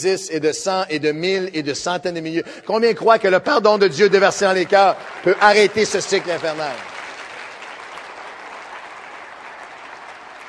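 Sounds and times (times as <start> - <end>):
speech: 0.0 - 6.9
large crowd applauding: 2.8 - 10.4.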